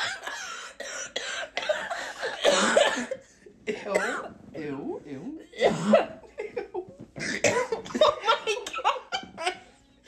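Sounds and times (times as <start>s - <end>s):
person coughing after hitting a vape: 0.0s - 4.3s, 5.6s - 6.2s, 7.2s - 8.1s
laughter: 7.8s - 9.7s.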